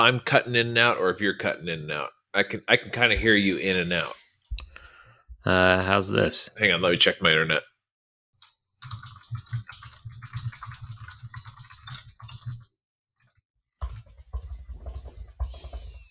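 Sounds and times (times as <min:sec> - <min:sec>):
speech: 0:00.0 - 0:04.2, 0:05.4 - 0:07.7
computer keyboard typing over an online call: 0:08.8 - 0:12.6.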